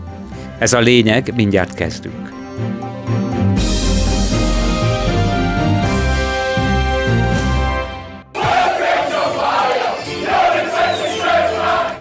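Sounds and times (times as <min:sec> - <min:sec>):
steady tonal music: 0:00.0 - 0:07.9
football fans cheering and chanting in a British pub: 0:00.0 - 0:11.9
speech: 0:00.6 - 0:02.8.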